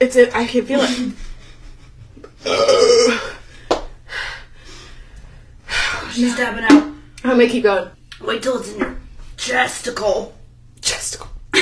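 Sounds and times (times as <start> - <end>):
speech: 0.0 - 1.3, 2.4 - 3.4, 6.2 - 11.6
loud drawn-out burp after chugging soda: 2.4 - 3.4.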